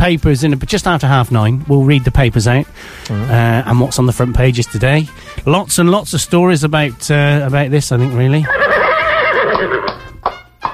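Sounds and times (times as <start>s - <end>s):
speech: 0.0s - 8.8s
horse neighing with a shrill wavering whinny: 3.1s - 4.6s, 8.4s - 10.0s.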